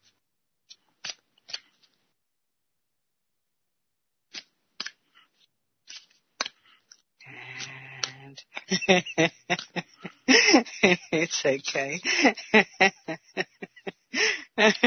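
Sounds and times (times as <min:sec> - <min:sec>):
playing cards being pulled from a deck: 0:00.7 - 0:01.9, 0:04.3 - 0:05.0, 0:05.9 - 0:06.6
laughter: 0:07.3 - 0:14.8
speech: 0:08.9 - 0:13.2.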